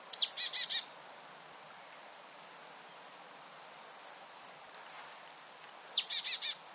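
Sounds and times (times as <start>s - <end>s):
marsh tit calling, Poecile palustris: 0.1s - 0.9s, 5.9s - 6.6s.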